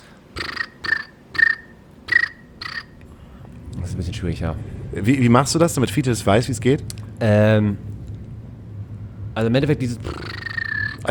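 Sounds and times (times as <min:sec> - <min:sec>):
voice imitating cricket chirping: 0:00.0 - 0:03.0, 0:10.0 - 0:11.0
speech: 0:04.0 - 0:07.9, 0:09.4 - 0:10.3.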